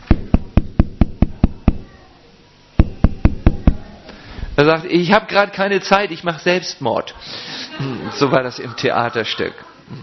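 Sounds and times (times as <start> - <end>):
firm rapid knocking on a door: 0.0 - 1.8, 2.8 - 3.8
speech: 4.6 - 7.2, 7.8 - 10.0.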